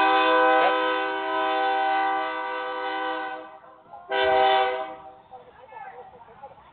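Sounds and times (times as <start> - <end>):
freight train horn blaring: 0.0 - 5.2
oil or sand freight train rumbling past in Rosenberg: 0.0 - 6.7.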